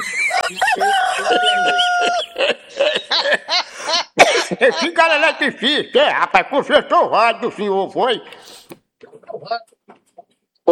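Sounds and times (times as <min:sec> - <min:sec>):
laughter: 0:00.0 - 0:06.2
rooster crowing: 0:00.4 - 0:02.4
speech: 0:04.6 - 0:08.6, 0:09.4 - 0:09.7.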